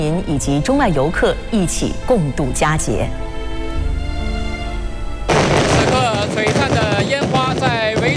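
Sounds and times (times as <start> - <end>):
speech: 0.2 - 3.3
sustained musical tone: 0.6 - 5.5
fireworks bursting with booms and crackles: 5.2 - 8.1.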